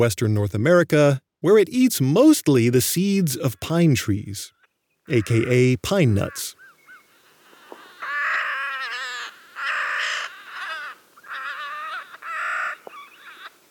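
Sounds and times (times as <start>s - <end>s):
speech: 0.0s - 6.6s
Clark's Nutcracker Nucifraga columbiana harsh grating calls: 4.5s - 13.6s.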